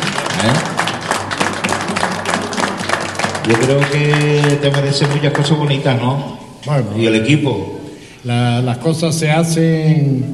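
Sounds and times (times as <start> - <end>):
crowd applauding: 0.0 - 6.2
speech: 3.5 - 10.3.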